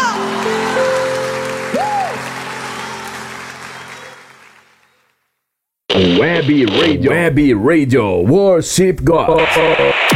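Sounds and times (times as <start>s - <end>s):
person speaking over applause: 0.0s - 1.0s, 1.7s - 4.7s
audience applause at a worship service: 0.0s - 5.2s
speech: 6.2s - 10.1s.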